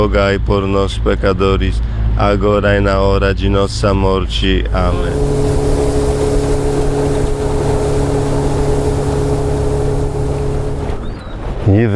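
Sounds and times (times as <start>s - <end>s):
speech: 0.0s - 5.8s, 11.7s - 11.9s
motorboat engine droning on water: 4.6s - 11.2s
wind noise: 4.8s - 11.7s
rushing water: 5.0s - 11.1s.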